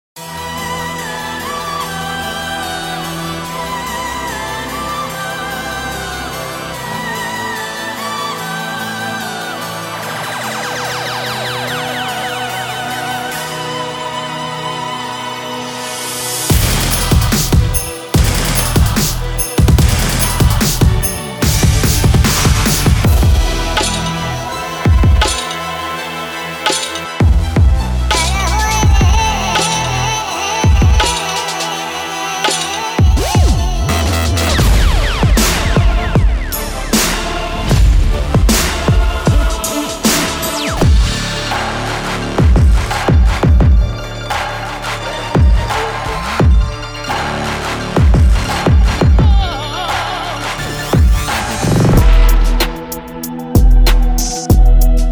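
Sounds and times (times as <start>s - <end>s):
German rap drum kit: 16.5s - 44.5s, 45.3s - 55.1s.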